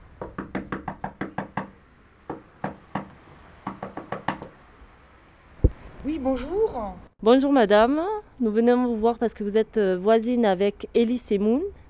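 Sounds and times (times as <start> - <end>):
knocking on a neighbour's house door in Val-d'Oise France: 0.0 - 5.8
speech: 6.0 - 11.8.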